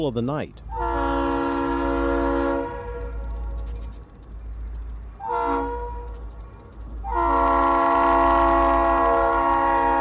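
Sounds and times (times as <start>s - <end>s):
speech: 0.0s - 0.9s
low rumble of a moving train: 0.0s - 9.9s
train horn blasts at a road crossing: 0.7s - 3.3s, 5.2s - 6.1s, 7.0s - 9.9s.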